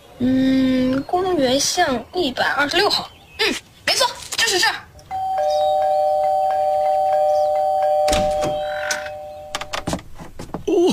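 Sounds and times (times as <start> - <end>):
speech: 0.2 - 0.5, 1.1 - 3.7
electronic doorbell ringing: 5.1 - 9.9
dull thunks: 9.5 - 10.8.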